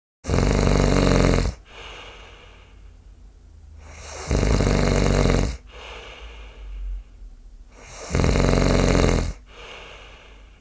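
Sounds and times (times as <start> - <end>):
person snoring: 0.2 - 2.5, 3.8 - 6.6, 7.7 - 10.5.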